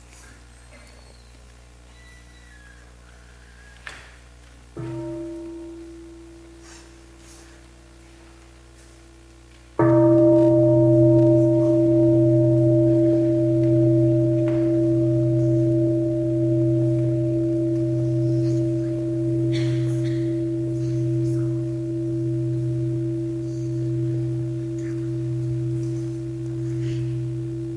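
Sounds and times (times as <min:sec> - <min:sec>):
deep mindfulness bell struck and resonating: 0:04.8 - 0:07.1, 0:09.8 - 0:27.7.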